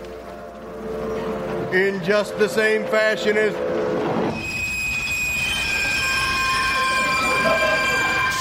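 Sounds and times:
train rumbling into a station: 0.0 - 8.3
speech: 1.7 - 3.7
train wheels squealing on rails: 2.0 - 8.3.

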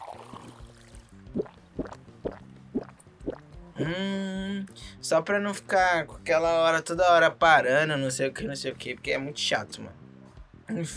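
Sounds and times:
faint liquid sloshing: 0.0 - 3.4
gulping water: 0.0 - 4.0
speech: 3.8 - 10.0, 10.7 - 10.9.

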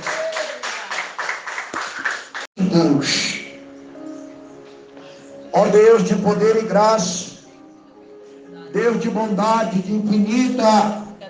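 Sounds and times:
audience clapping in a steady brisk rhythm: 0.0 - 2.5
speech: 2.6 - 3.4, 5.6 - 7.2, 8.8 - 11.0.

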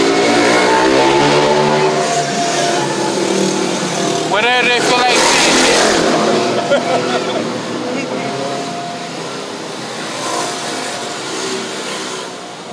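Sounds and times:
loud raspy scooter with noisy exhaust revving past: 0.0 - 12.7
speech: 4.4 - 6.0, 6.7 - 7.4
laughter: 4.9 - 8.2.

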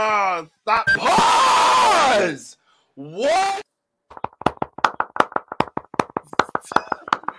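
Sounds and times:
speech: 0.0 - 3.7
hands clapping with room echo: 4.1 - 7.3.

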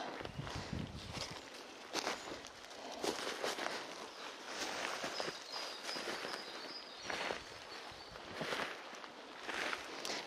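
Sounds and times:
footsteps in hiking shoes scuffing on dead leaves across a steep slope: 0.0 - 10.2.

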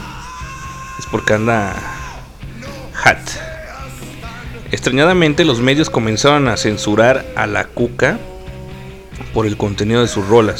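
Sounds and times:
cat yowling: 0.0 - 2.3
speech: 1.0 - 2.0, 3.0 - 3.5, 4.7 - 8.3, 9.3 - 10.5.

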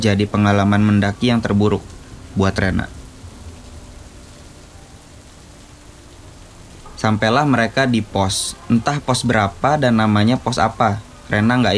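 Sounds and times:
speech: 0.0 - 3.0, 7.0 - 11.7
low rumble: 0.0 - 8.2
heavy rain pouring: 0.0 - 11.7.

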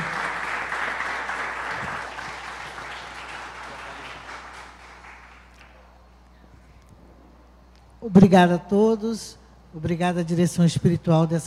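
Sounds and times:
audience applause: 0.0 - 5.9
speech: 8.0 - 11.4.

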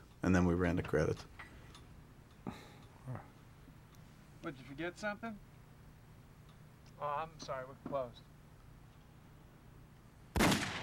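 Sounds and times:
speech: 0.2 - 1.5, 2.4 - 3.3, 4.4 - 5.5, 7.0 - 8.3
movie gunshot sound effect: 10.3 - 10.8.

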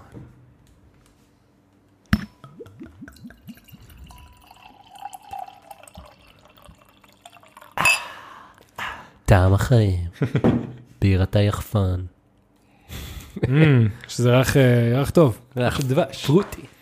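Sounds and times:
wine gurgling as poured from a glass bottle: 2.2 - 8.1
glass bottle clinking: 2.2 - 8.2
speech: 9.3 - 12.1, 13.4 - 16.6.

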